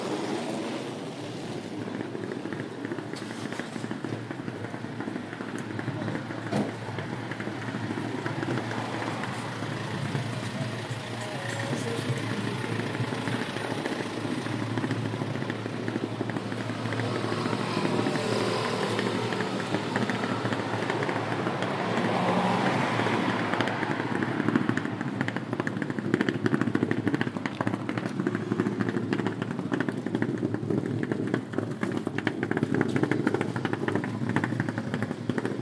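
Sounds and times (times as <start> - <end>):
low traffic hum: 0.0 - 35.5
suitcase wheels rattling along a street: 1.0 - 35.5.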